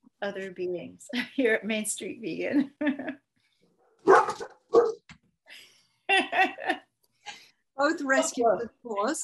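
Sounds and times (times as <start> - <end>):
speech: 0.2 - 3.2, 7.8 - 9.2
female dog barking: 3.9 - 5.1
laughter: 6.1 - 6.8.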